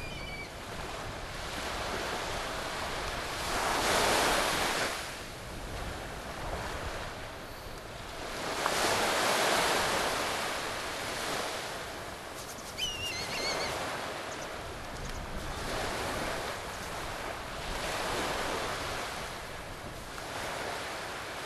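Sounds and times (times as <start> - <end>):
kite calling: 0.0 - 0.6, 12.4 - 15.2
wind: 0.0 - 21.4.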